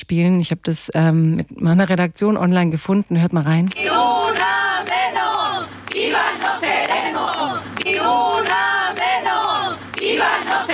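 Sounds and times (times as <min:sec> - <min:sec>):
speech: 0:00.0 - 0:04.5
crowd of women chanting in unison at a night protest march: 0:03.7 - 0:10.7.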